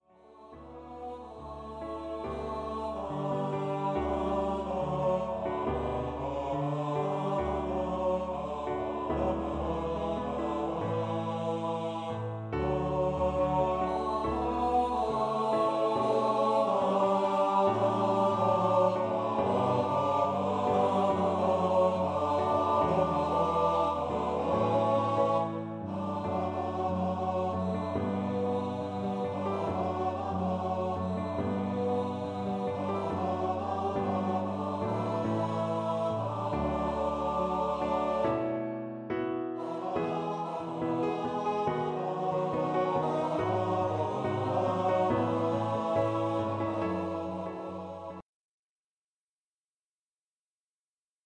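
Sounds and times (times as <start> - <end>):
male voice choir singing a two-part song: 0.1 - 48.2.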